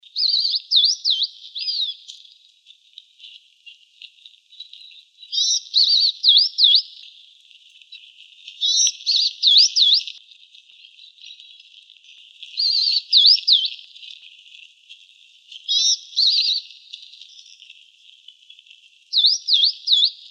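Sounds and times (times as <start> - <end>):
house wren calling: 0.2 - 2.2, 5.3 - 7.0, 8.6 - 10.2, 12.6 - 13.9, 15.7 - 17.6, 19.1 - 20.3.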